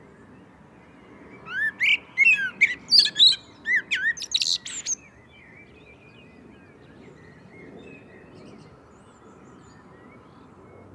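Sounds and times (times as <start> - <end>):
Common blackbird song, Turdus merula: 1.4 - 5.0.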